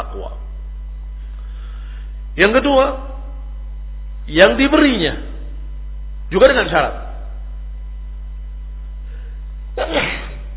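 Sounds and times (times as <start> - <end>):
low steady hum: 0.0 - 10.5
speech: 2.4 - 3.1, 4.3 - 5.3, 6.3 - 7.0, 9.8 - 10.2
person sneezing: 9.8 - 10.5.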